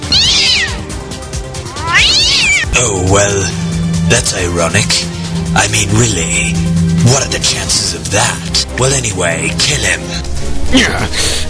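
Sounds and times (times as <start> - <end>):
wild forest cat meowing in a video game: 0.0 - 1.0, 1.6 - 2.7
low rumbling video game background: 1.1 - 11.4
speech: 2.8 - 11.4.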